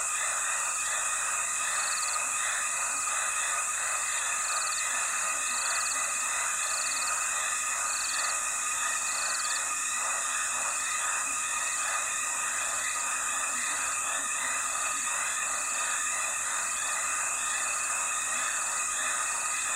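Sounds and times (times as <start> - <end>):
frogs chorus beside a dry stretch of the Limpopo River in South Africa: 0.0 - 19.7
insects chorus beside a dry stretch of the Limpopo River in South Africa: 0.0 - 19.7.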